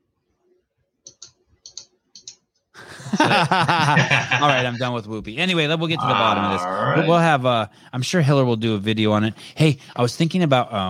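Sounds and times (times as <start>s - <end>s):
computer mouse clicking on a web page link: 1.0s - 2.4s
laughter: 2.8s - 5.0s
speech: 3.1s - 10.8s.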